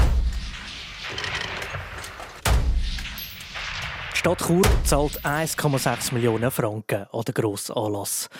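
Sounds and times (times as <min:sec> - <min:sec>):
rifle shot echoing at an outdoor shooting range: 0:01.9 - 0:05.8
speech: 0:04.2 - 0:08.3.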